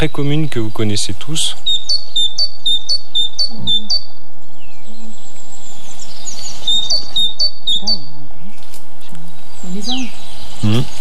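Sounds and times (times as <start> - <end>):
speech: 0.0 - 4.0, 9.6 - 10.9
small birds chirping: 0.0 - 10.9
great tit and other tit songs in Cévennes National Park France: 10.6 - 10.9
person speaking quietly during bird monitoring: 10.6 - 10.9.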